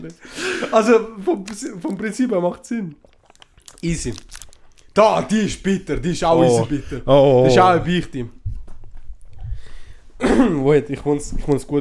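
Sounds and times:
speech: 0:00.0 - 0:03.1, 0:03.8 - 0:04.4, 0:05.0 - 0:08.4, 0:10.2 - 0:11.7
person coughing with low throaty rumbles: 0:10.2 - 0:10.6.

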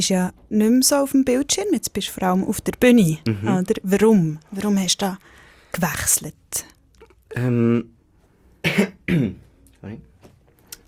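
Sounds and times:
speech: 0:00.0 - 0:08.0, 0:08.6 - 0:10.1
person clearing their throat: 0:08.6 - 0:09.5.

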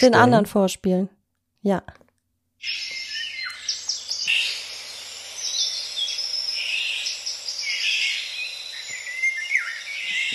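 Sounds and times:
speech: 0:00.0 - 0:02.0, 0:02.6 - 0:03.0
colourful songbird singing: 0:02.6 - 0:10.3
faint steady insect-like hum: 0:02.6 - 0:10.3.

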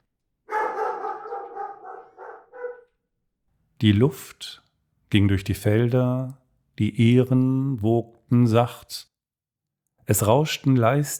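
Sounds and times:
dog barking threateningly: 0:00.5 - 0:03.0
speech: 0:03.8 - 0:09.1, 0:10.1 - 0:11.1.

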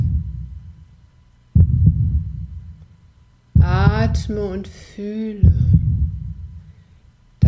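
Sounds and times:
deep heartbeat thumps: 0:00.0 - 0:00.9, 0:01.5 - 0:04.4, 0:05.4 - 0:06.7
steady throbbing rumble: 0:00.0 - 0:00.9, 0:01.6 - 0:02.8, 0:03.6 - 0:04.6, 0:05.4 - 0:06.7
speech: 0:04.1 - 0:05.7.

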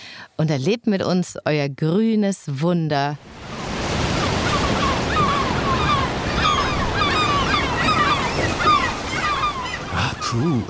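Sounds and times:
speech: 0:00.4 - 0:03.4, 0:10.3 - 0:10.6
gusty wind: 0:03.2 - 0:10.2
rough sea surf with breaking waves: 0:03.2 - 0:10.6
faint chirping bird calls: 0:04.2 - 0:10.6.

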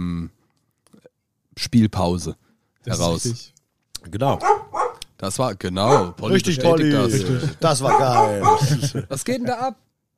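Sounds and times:
speech: 0:01.6 - 0:09.8
dog barking and yipping: 0:04.4 - 0:05.0, 0:05.8 - 0:06.2, 0:07.8 - 0:08.8
people laughing: 0:06.3 - 0:09.6.

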